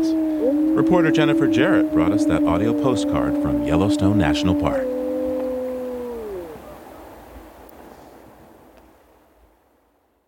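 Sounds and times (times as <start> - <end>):
several wolves howling: 0.0 - 7.2
speech: 0.8 - 4.9.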